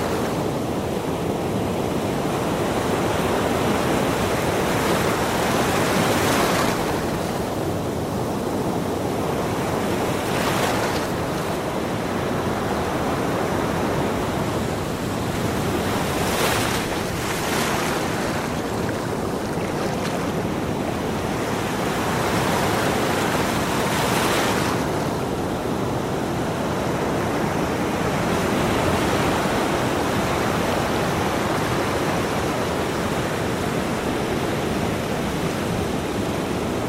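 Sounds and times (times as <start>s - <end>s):
ocean waves washing against the shore: 0.0s - 36.8s
wind: 0.0s - 36.8s.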